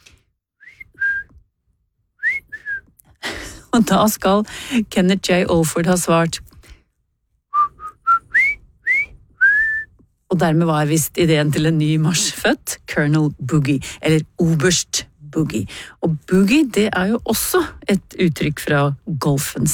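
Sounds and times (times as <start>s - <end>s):
person whistling two notes: 0.6s - 1.4s, 2.2s - 2.8s, 7.6s - 9.9s
speech: 3.8s - 6.5s, 10.4s - 19.7s.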